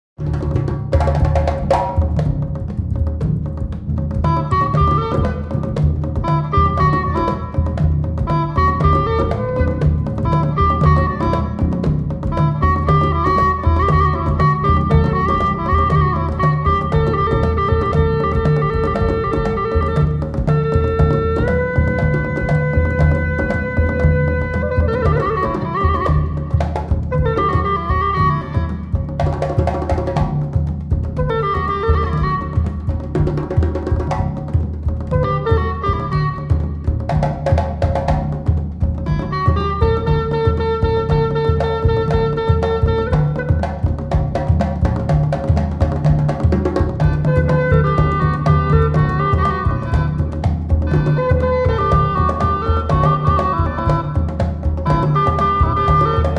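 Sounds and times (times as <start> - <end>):
drums: 0.2 - 56.3
hulusi playing: 0.2 - 56.3.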